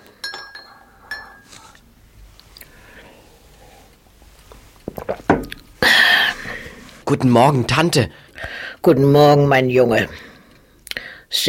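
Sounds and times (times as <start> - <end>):
spoon clinking against a teacup while stirring tea at a breakfast table: 0.1 - 1.5
speech: 7.1 - 8.2, 8.8 - 10.3.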